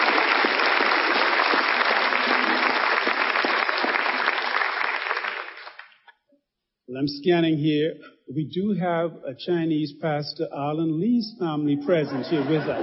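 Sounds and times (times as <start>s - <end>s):
large audience applauding: 0.0s - 6.0s
speech: 7.0s - 12.8s
laughter: 11.7s - 12.8s.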